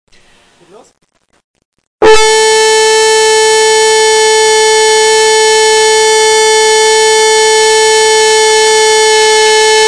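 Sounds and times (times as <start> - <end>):
flugelhorn playing the note A: 2.0 - 9.8.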